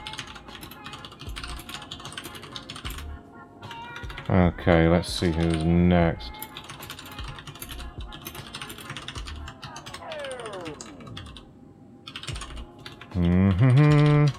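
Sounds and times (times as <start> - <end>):
typing on a computer keyboard: 0.0 - 3.0, 3.6 - 5.7, 6.4 - 11.4, 12.1 - 14.3
speech: 4.3 - 6.4
descending tonal sweep: 10.0 - 12.0.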